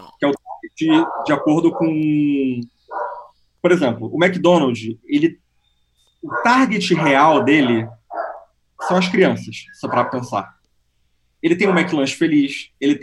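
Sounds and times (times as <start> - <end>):
speech: 0.2 - 2.8, 3.6 - 5.4, 6.2 - 8.0, 8.8 - 10.6, 11.4 - 13.0
dog barking: 0.5 - 2.0, 2.9 - 3.3, 6.2 - 10.5, 11.6 - 12.2.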